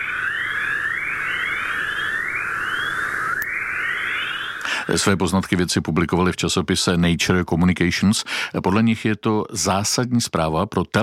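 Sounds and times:
rising electronic chirps and whistles from electromagnetic waves in space: 0.0s - 4.7s
steady hiss: 4.2s - 5.1s
speech: 4.9s - 11.0s.

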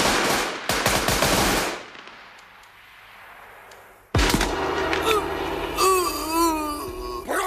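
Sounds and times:
gunfire: 0.0s - 2.3s, 4.1s - 5.8s
frantic crying voices: 4.9s - 7.3s.

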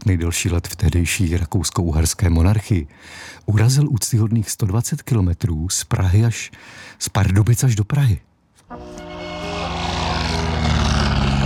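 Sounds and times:
speech: 0.0s - 9.0s
old Blériot XI aircraft engine roaring: 8.7s - 11.4s.

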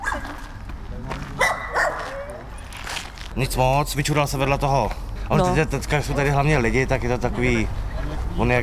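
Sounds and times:
dog barking at a dog urinal: 0.0s - 0.4s, 1.4s - 2.3s
outdoor hum: 0.0s - 8.6s
speech: 3.4s - 7.8s, 8.4s - 8.6s.

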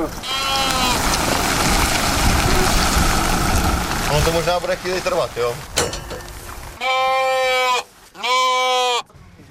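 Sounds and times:
speech: 0.0s - 0.4s, 4.1s - 5.8s
faint rumble: 0.0s - 6.8s
sheep bleating in a trailer: 0.2s - 1.0s, 6.8s - 9.1s.

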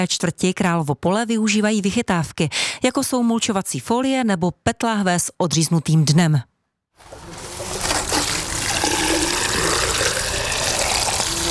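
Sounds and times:
speech: 0.0s - 7.2s
tap water gushing while watering a garden: 7.4s - 11.4s.

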